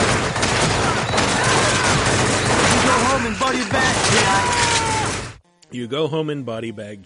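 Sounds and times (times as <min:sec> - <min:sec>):
gunfire in a Vietnam War shooter video game: 0:00.0 - 0:05.3
speech: 0:05.7 - 0:07.0.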